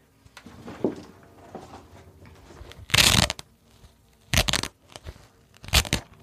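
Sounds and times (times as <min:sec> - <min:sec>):
rustling and handling noises: 0:00.0 - 0:06.2
Velcro fastener being pulled open: 0:02.7 - 0:06.2.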